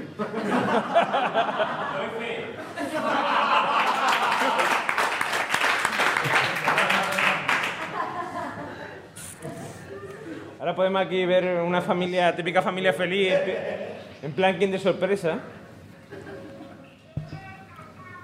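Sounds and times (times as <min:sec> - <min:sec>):
crowd chuckling and laughing: 0:00.0 - 0:05.0, 0:06.1 - 0:09.1, 0:16.0 - 0:16.9
speech: 0:00.2 - 0:01.5, 0:10.7 - 0:15.6
crowd clapping: 0:03.6 - 0:08.0.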